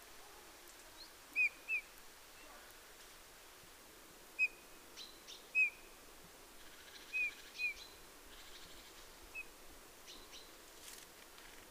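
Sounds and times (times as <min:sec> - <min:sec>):
quiet hiss: 0:00.0 - 0:11.7
Eurasian bullfinch soft piping whistled calls: 0:01.0 - 0:01.9, 0:04.4 - 0:05.9, 0:06.6 - 0:09.5.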